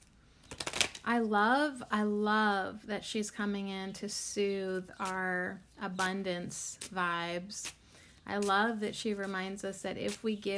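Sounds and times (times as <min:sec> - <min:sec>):
oracle cards being shuffled: 0:00.4 - 0:01.0, 0:04.8 - 0:05.2, 0:05.9 - 0:10.5
speech: 0:01.1 - 0:10.5.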